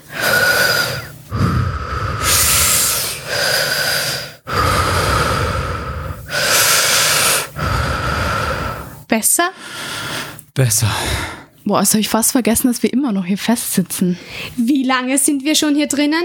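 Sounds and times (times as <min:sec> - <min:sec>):
heavy breathing from someone calming down while sitting upright: 0:00.0 - 0:11.6
speech: 0:09.1 - 0:09.6, 0:10.6 - 0:16.2.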